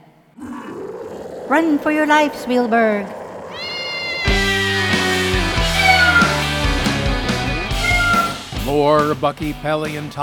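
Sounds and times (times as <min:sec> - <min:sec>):
cloned three-million-year-old cat roaring and growling: 0:00.4 - 0:06.6, 0:07.7 - 0:08.4
speech: 0:01.5 - 0:03.2, 0:08.7 - 0:10.2.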